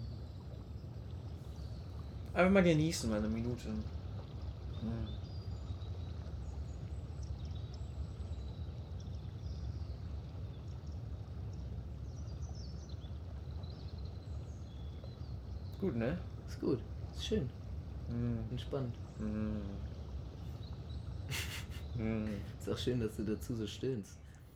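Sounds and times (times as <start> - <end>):
distant cars rumbling: 0.0 - 24.5
steady rush of water: 0.0 - 24.5
speech: 2.4 - 4.0, 4.8 - 5.2, 15.8 - 20.0, 21.3 - 24.2
person murmuring: 19.2 - 19.8, 21.3 - 22.6
laughter: 21.3 - 22.6.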